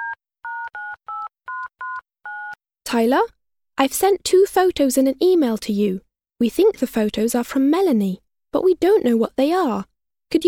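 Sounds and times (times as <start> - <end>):
telephone keypad dialing two-tone beeps: 0.0 - 2.6
speech: 2.9 - 10.4.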